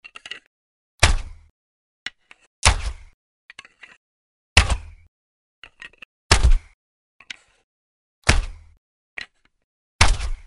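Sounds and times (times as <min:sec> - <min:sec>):
crossbow: 0:01.0 - 0:01.5, 0:02.3 - 0:03.2, 0:06.3 - 0:06.8, 0:08.2 - 0:08.8, 0:10.0 - 0:10.4.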